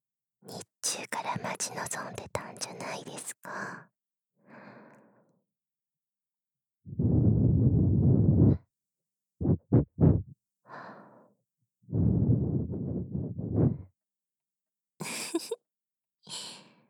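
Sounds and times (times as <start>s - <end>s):
speech: 0.5s - 4.6s
gentle blowing into the ear: 6.9s - 8.6s, 12.0s - 13.9s.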